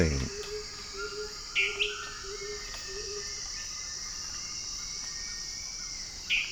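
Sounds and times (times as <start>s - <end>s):
faint low calls: 0.0s - 0.3s
speech: 0.0s - 0.4s
constant shrill insect drone: 0.0s - 6.5s
dwarf tyrant-manakin singing: 0.0s - 6.5s.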